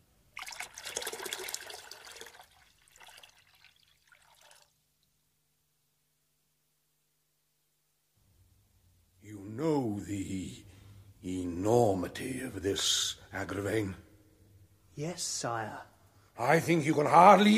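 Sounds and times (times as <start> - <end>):
water pouring in a splashing stream: 0.3 - 4.8
speech: 10.0 - 14.0, 15.0 - 17.5.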